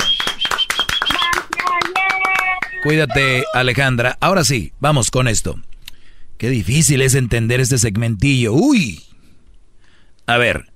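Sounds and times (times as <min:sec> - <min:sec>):
hands clapping: 0:00.0 - 0:03.0
speech: 0:02.8 - 0:05.7, 0:06.4 - 0:09.1, 0:10.3 - 0:10.7.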